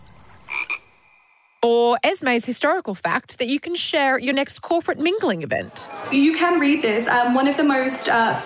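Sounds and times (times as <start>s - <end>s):
frog croaking in a played video: 0.3s - 1.6s
speech: 1.6s - 8.4s.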